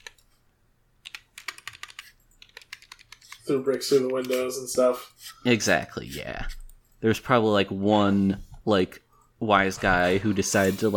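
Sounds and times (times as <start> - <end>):
typing on a computer keyboard: 0.0 - 0.2, 1.0 - 4.5
speech: 3.5 - 10.9.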